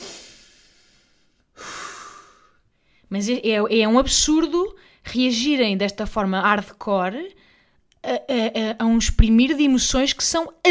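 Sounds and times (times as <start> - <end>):
deep calming breaths from an upset person trying to settle down: 0.0 - 3.1
speech: 3.1 - 10.7.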